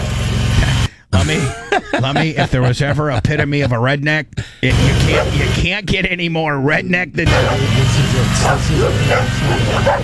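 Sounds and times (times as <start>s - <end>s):
laughter: 0.6s - 3.8s, 4.6s - 5.6s, 7.3s - 10.0s
speech: 1.2s - 10.0s
dog barking in short yapping barks: 4.7s - 5.5s, 7.3s - 10.0s.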